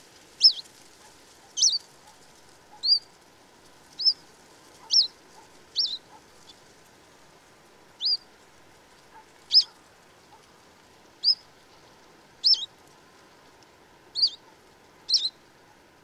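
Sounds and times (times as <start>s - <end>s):
presumed first-winter bird giving thin whistled wheeoo calls: 0.4s - 0.7s, 1.6s - 1.8s, 2.8s - 3.0s, 4.0s - 4.2s, 4.9s - 5.1s, 5.8s - 6.0s, 8.0s - 8.2s, 9.5s - 9.7s, 11.2s - 11.4s, 12.4s - 12.7s, 14.2s - 14.4s, 15.1s - 15.4s.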